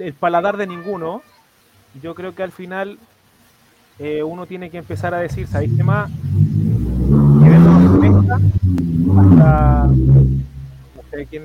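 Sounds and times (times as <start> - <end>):
speech: 0.0 - 1.3, 1.9 - 3.2, 4.0 - 6.3, 8.4 - 10.1, 11.1 - 11.4
car driving past outside the house: 4.9 - 11.2.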